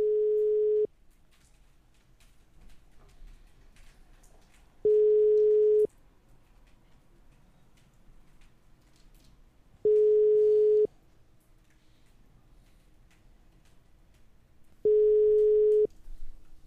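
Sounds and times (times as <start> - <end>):
telephone ringback tones of an unanswered call: 0.0 - 0.9, 4.8 - 5.9, 9.8 - 10.9, 14.8 - 15.9.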